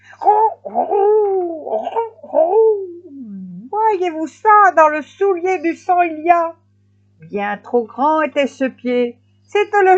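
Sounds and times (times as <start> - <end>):
voice imitating turtle doves cooing: 0.0 - 3.8
speech: 4.0 - 6.6, 7.3 - 9.9.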